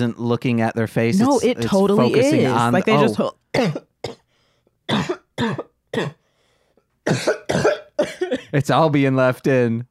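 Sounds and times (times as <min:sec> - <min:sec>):
speech: 0:00.0 - 0:04.2, 0:04.9 - 0:06.2, 0:07.1 - 0:09.8
loud harsh coughs: 0:03.0 - 0:04.3, 0:04.9 - 0:06.2, 0:07.1 - 0:08.6.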